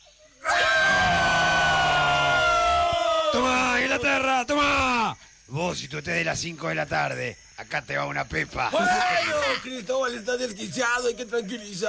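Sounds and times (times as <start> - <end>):
crowd of many voices screaming and cheering: 0.5 - 3.4
speech: 4.0 - 11.8.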